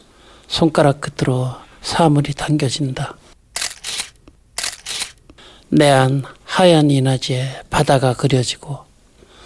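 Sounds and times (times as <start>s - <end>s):
speech: 0.5s - 3.2s, 5.7s - 8.8s
SLR camera shutter actuations with mirror and shutter clack: 3.6s - 5.3s.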